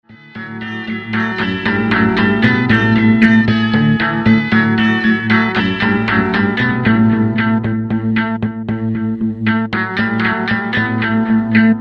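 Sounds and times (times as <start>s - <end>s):
electric guitar: 0.1s - 11.7s.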